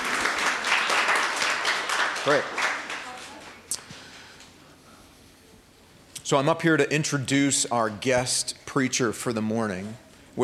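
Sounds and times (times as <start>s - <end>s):
room full of people applauding: 0.0s - 3.6s
speech: 2.2s - 2.7s, 6.3s - 10.4s.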